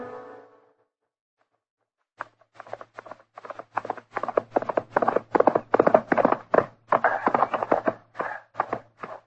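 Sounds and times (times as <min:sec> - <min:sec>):
horse hooves clip-clopping: 0:02.2 - 0:09.2.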